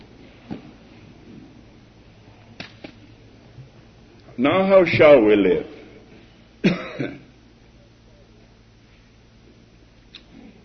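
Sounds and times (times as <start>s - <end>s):
speech: 4.4s - 5.7s
harsh coughs like throat clearing: 6.6s - 7.3s.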